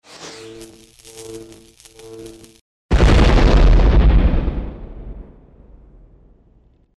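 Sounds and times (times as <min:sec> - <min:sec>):
explosion caused by a short circuit: 0:02.9 - 0:06.9.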